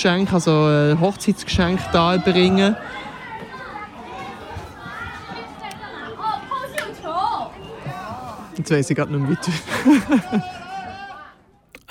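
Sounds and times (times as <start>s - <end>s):
speech: 0.0s - 3.1s, 8.6s - 10.6s
children's voices and shouts at a festival playground: 1.0s - 11.5s
laughter: 9.3s - 11.2s.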